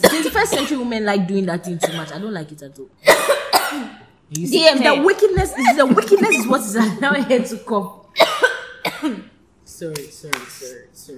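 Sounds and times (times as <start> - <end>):
short coughs trailing into a throaty exhale: 0.0 - 0.8, 1.8 - 2.2, 3.0 - 4.0, 8.2 - 9.4
speech: 0.4 - 8.4, 9.0 - 11.1.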